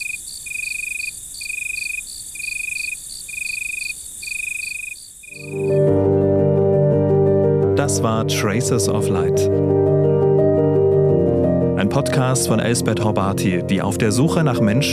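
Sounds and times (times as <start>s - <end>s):
crickets chirping at night: 0.0s - 5.7s
gentle music: 5.4s - 14.9s
speech: 7.9s - 10.0s, 11.9s - 14.9s.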